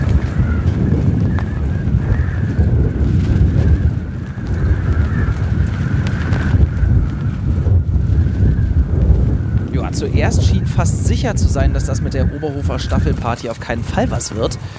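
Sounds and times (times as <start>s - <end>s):
strong storm wind roaring in a stadium arena in Oberhof: 0.0s - 14.7s
speech: 10.0s - 14.7s.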